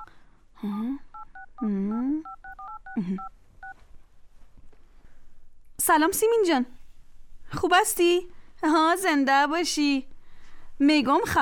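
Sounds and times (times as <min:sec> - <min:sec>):
speech: 0:00.6 - 0:02.4, 0:03.0 - 0:03.4, 0:05.8 - 0:06.8, 0:07.6 - 0:10.1, 0:10.8 - 0:11.4
touch-tone beeps of a telephone number being dialed: 0:01.2 - 0:01.6, 0:02.2 - 0:03.8.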